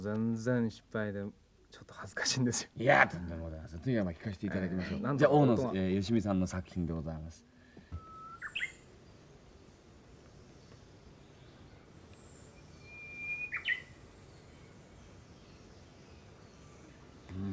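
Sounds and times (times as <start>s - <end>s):
speech: 0.0s - 7.5s
steady outdoor hiss: 0.0s - 17.5s
Izu Islands bush warbler singing whistled phrases: 7.9s - 17.5s.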